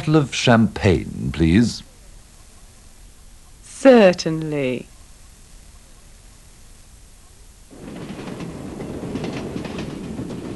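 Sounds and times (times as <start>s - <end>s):
train running on rails: 0.0s - 1.8s, 7.7s - 10.5s
speech: 0.0s - 1.9s, 3.8s - 4.9s.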